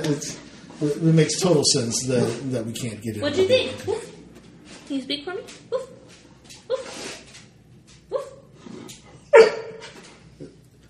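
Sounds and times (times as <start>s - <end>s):
speech: 0.1s - 4.0s, 4.9s - 5.9s
dog giving short sad whimpering barks: 9.3s - 9.8s.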